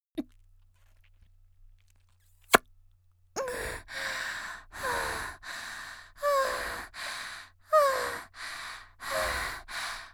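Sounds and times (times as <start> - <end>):
energetic girl breathing heavily: 3.4 - 10.1.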